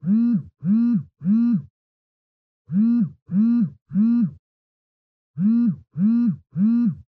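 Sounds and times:
cell phone vibrating on a blanket: 0.0 - 1.7, 2.7 - 4.4, 5.4 - 7.0.

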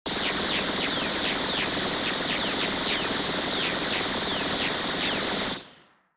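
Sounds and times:
long retro anime gunshot: 0.1 - 5.9.

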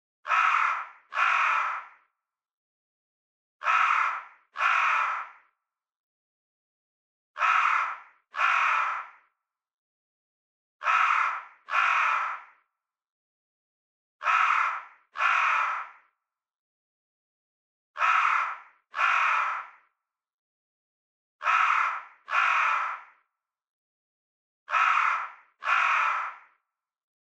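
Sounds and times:
crow calling: 0.2 - 2.1, 3.6 - 5.6, 7.4 - 9.4, 10.8 - 12.7, 14.2 - 16.2, 18.0 - 20.0, 21.4 - 23.3, 24.7 - 26.6.

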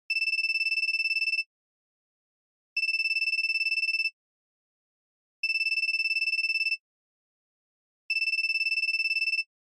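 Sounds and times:
feature phone ringtone: 0.1 - 1.5, 2.8 - 4.2, 5.4 - 6.8, 8.1 - 9.5.

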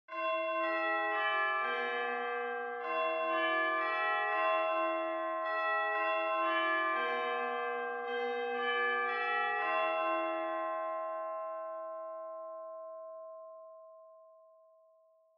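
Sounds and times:
distant Japanese school bell ringing fast and long: 0.1 - 11.8.

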